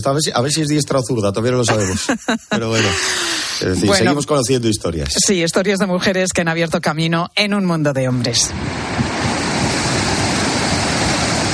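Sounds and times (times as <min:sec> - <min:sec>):
speech: 0:00.0 - 0:09.2
laughter: 0:01.7 - 0:03.7
rough stormy sea surf roaring: 0:08.4 - 0:11.5
gusty wind buffeting the microphone: 0:08.5 - 0:11.5.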